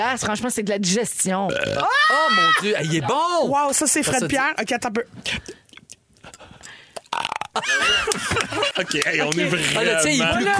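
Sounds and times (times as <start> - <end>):
speech: 0.0 - 5.6, 7.6 - 10.5
loud throaty burp: 1.5 - 2.0, 7.0 - 7.6
laughter: 1.9 - 3.4, 7.6 - 10.5.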